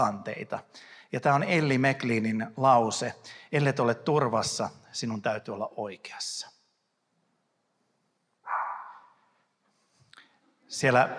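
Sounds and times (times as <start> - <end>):
speech: 0.0 - 6.6, 10.7 - 11.1
dog barking: 8.5 - 9.1.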